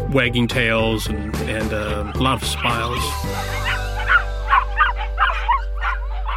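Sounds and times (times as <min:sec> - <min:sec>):
speech: 0:00.1 - 0:03.8
puppies yipping and whimpering: 0:01.7 - 0:06.3.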